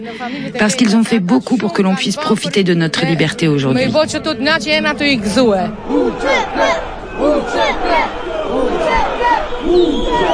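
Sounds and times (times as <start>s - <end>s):
speech: 0.0s - 10.3s
protest crowd shouting and chanting in indignation: 4.4s - 10.3s.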